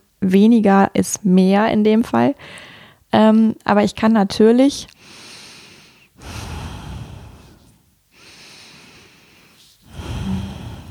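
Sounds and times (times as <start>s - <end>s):
speech: 0.2s - 5.2s
deep fast rhythmic breathing: 5.0s - 10.8s.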